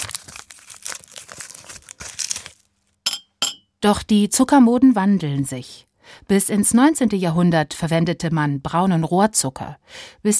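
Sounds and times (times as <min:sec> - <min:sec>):
thin paper sugar cube wrapper rustling and tearing: 0:00.0 - 0:03.0
speech: 0:03.8 - 0:10.3.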